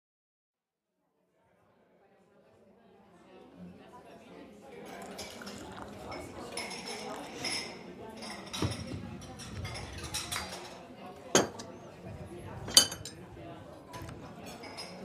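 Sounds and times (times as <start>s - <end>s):
murmur of indistinct chatter in a café: 1.2s - 15.0s
dishes and cutlery clinking in a café: 4.9s - 11.8s, 12.6s - 13.3s, 13.9s - 15.0s.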